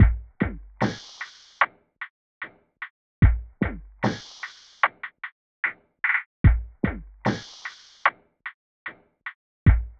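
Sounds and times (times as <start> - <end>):
underground percussion loop: 0.0 - 1.7, 3.2 - 8.2, 9.7 - 9.9.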